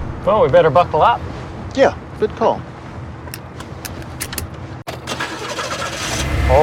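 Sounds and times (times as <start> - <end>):
speech: 0.2 - 2.7
powerful car engine starting: 4.9 - 6.6.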